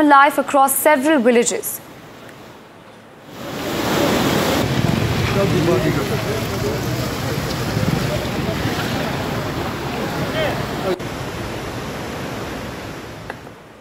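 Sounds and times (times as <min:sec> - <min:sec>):
speech: 0:00.0 - 0:01.9, 0:05.4 - 0:07.0
rushing floodwater from overflowing rivers and streams in Mahinder in Pooch: 0:01.8 - 0:13.7
heavy rain in Mahinder in Pooch: 0:03.2 - 0:13.7.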